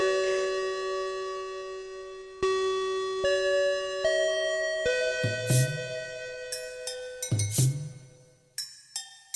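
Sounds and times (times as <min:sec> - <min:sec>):
doorbell chime in a short stepping melody: 0:00.0 - 0:08.3.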